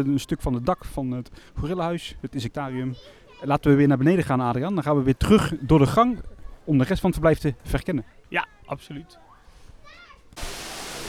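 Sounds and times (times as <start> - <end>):
speech: 0.0 - 9.3
waterfall roaring: 10.4 - 11.0.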